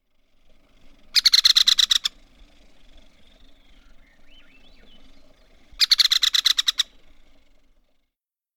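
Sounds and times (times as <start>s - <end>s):
American three-toed woodpecker rattle call: 0.0s - 8.0s
quiet forest ambience: 0.0s - 8.1s.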